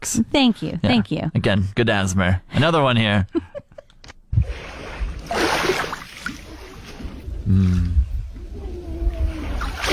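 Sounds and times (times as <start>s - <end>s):
speech: 0.0s - 3.5s, 7.5s - 8.0s
lake waves lapping against a shore: 4.4s - 9.9s.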